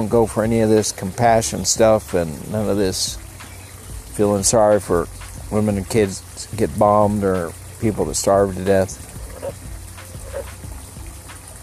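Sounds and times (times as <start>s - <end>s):
speech: 0.0s - 3.2s, 4.2s - 9.1s
steady hiss of outdoor noise: 0.0s - 11.6s
frog croaking in short throaty bursts: 9.0s - 10.6s.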